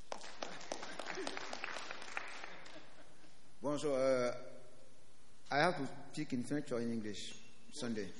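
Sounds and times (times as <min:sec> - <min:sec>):
audience applause: 0:00.0 - 0:03.0
speech: 0:03.7 - 0:04.5, 0:05.5 - 0:08.1.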